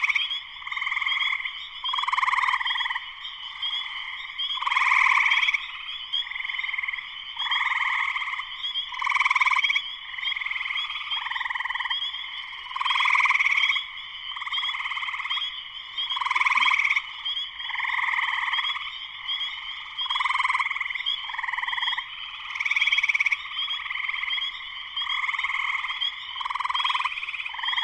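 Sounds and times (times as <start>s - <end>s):
spring peepers chorus frogs in full chorus after sunset in northern Michigan: 0.0s - 27.8s.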